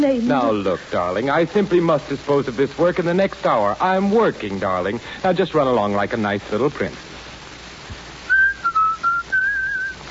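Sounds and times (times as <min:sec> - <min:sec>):
speech: 0:00.0 - 0:07.1
person whistling a short lilting melody: 0:08.3 - 0:10.0.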